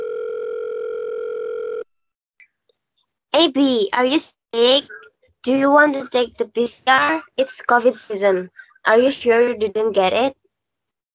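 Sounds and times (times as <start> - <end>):
telephone tone as a call is placed: 0.0 - 2.0
speech: 3.4 - 10.4.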